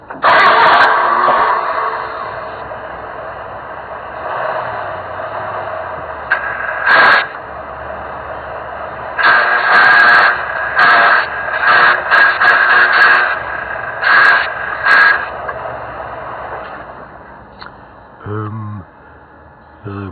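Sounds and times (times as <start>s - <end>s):
car engine cranking and sputtering after a crash: 0.0s - 2.8s
steady mechanical hum: 0.0s - 20.0s.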